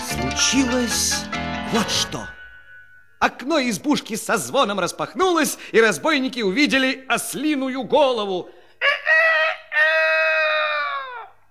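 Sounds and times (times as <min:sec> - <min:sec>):
speech: 0:00.4 - 0:02.4, 0:03.2 - 0:08.9
rooster crowing from hiding beneath a cottage window: 0:08.8 - 0:11.4.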